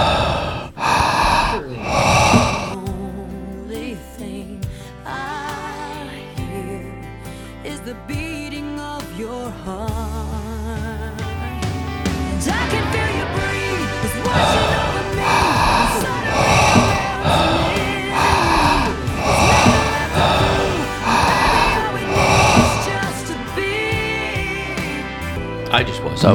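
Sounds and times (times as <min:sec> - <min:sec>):
heavy rhythmic breathing into the microphone: 0:00.0 - 0:02.8, 0:13.8 - 0:23.6
steady musical background: 0:00.0 - 0:26.3.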